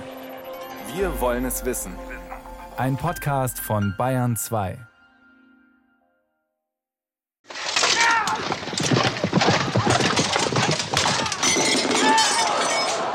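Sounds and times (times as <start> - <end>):
speech: 1.0 - 2.2, 2.8 - 4.9
horse hooves clattering in a joust: 7.5 - 13.1
lance shattering with cracking and splintering wood: 7.5 - 13.1.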